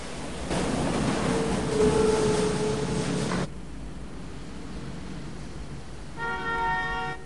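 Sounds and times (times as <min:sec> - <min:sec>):
tram rumbling pulling into a station: 0:00.0 - 0:07.2.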